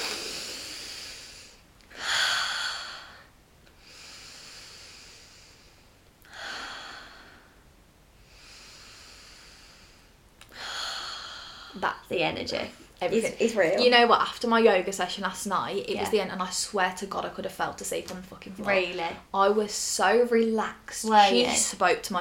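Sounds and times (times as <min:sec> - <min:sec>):
deep breathing in during a relaxation breathing exercise: 0:00.0 - 0:11.8
speech: 0:11.8 - 0:22.2.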